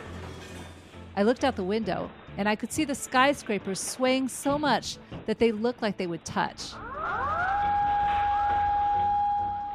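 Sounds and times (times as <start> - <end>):
speech: 1.2 - 6.8
tsunami warning siren in Tokyo Japan: 6.8 - 9.7.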